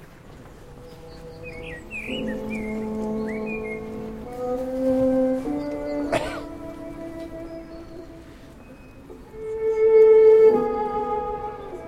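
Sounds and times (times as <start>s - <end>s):
birds chirping and twittering outdoors: 0.0s - 11.8s
slow sustained string music: 0.0s - 11.8s
steady hiss: 0.0s - 11.8s.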